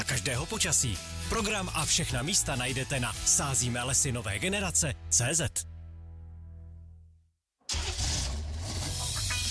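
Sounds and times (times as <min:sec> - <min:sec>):
speech: 0:00.0 - 0:05.7
car engine revving: 0:07.7 - 0:09.4.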